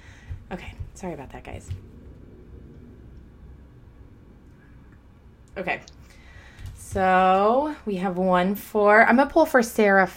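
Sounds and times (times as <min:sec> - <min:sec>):
speech: 0:00.5 - 0:01.9, 0:05.6 - 0:06.1, 0:06.9 - 0:10.1
airplane passing overhead: 0:01.1 - 0:06.7.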